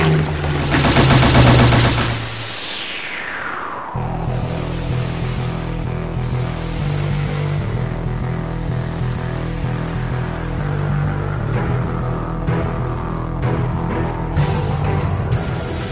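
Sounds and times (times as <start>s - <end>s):
aircraft engine drone: 0.3s - 15.9s
plane passing with descending whine: 0.4s - 14.4s
aircraft machine-gun fire during a strafing run: 0.5s - 2.5s.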